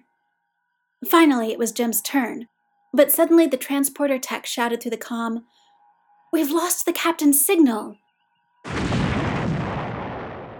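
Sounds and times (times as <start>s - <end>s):
speech: 1.0s - 5.6s, 6.3s - 8.0s
space station explosion boom and roaring rumble: 8.7s - 10.5s.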